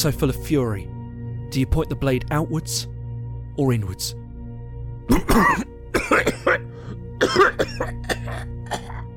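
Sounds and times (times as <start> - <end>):
speech: 0.0 - 0.9, 1.5 - 3.0, 3.6 - 4.2, 5.1 - 8.9
man coughing and hacking violently: 5.0 - 9.1.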